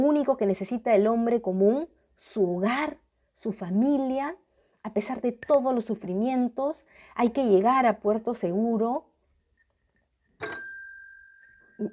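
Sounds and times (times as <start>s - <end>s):
speech: 0.0s - 9.1s
bell ringing: 10.4s - 11.9s.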